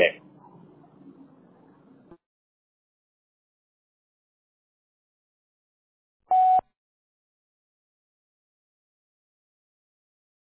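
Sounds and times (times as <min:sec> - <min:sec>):
voice: 0:00.0 - 0:01.8
loud steady voicemail electronic beep tone: 0:06.3 - 0:06.6.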